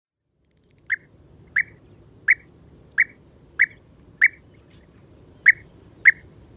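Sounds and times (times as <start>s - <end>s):
quiet low rumble: 0.2s - 6.5s
European bee-eater sharp rolling calls: 0.8s - 6.5s.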